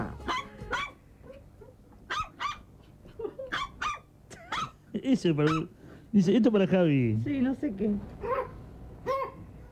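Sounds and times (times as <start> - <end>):
small dogs barking in high-pitched yaps: 0.0 - 4.8, 5.4 - 5.7, 8.2 - 9.7
faint hum: 0.0 - 9.7
speech: 5.0 - 8.3.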